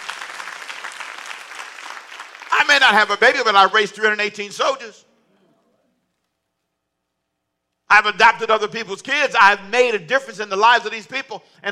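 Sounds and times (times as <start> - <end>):
church audience applauding at the preacher's call: 0.0 - 3.2
speech: 2.7 - 5.1, 7.9 - 11.7.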